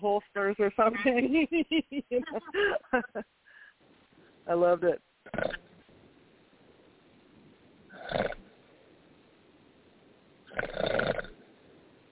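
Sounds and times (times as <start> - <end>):
speech: 0.0 - 3.3, 4.5 - 5.1
faint hiss: 0.0 - 12.1
laughter: 0.9 - 3.2
rough rattling snores: 10.5 - 11.3.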